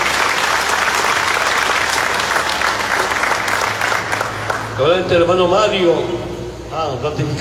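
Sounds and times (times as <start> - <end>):
crowd applauding at a meeting: 0.0 - 4.9
speech: 4.8 - 7.3.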